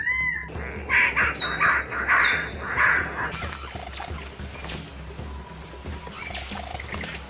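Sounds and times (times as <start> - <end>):
bird-of-paradise rasping squawks: 0.0 - 4.0
steady forest hum: 0.0 - 7.2.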